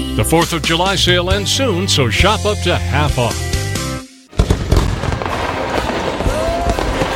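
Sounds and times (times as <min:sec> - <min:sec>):
speech: 0:00.2 - 0:03.5
dense barrage of fireworks bursting and crackling: 0:04.3 - 0:07.1
whistling firework rocket rising: 0:04.4 - 0:07.1.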